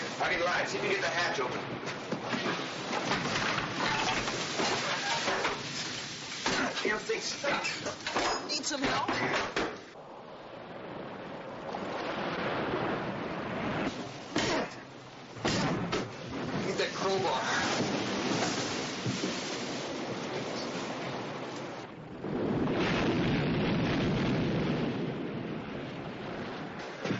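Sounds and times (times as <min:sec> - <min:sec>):
water rushing and sloshing into an enclosed vehicle compartment: 0:00.0 - 0:24.0
speech: 0:00.2 - 0:03.3, 0:06.8 - 0:09.7
wind-like roar: 0:09.9 - 0:14.1, 0:15.6 - 0:27.0.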